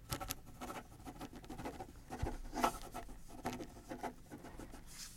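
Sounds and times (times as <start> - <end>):
pen scratching across paper writing a letter: 0.1 - 4.9.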